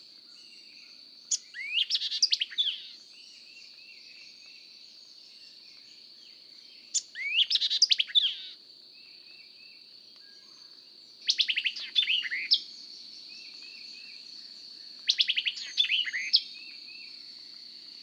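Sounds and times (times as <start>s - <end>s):
White-eyed Vireo song: 1.3s - 5.9s, 6.8s - 8.6s, 11.2s - 14.2s, 15.0s - 17.1s.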